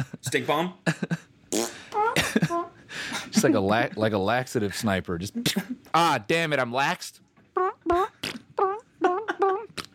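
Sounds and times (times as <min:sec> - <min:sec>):
speech: 0:00.0 - 0:01.2, 0:02.3 - 0:08.4
fart noises from a video game gun: 0:01.5 - 0:01.8, 0:07.6 - 0:09.9.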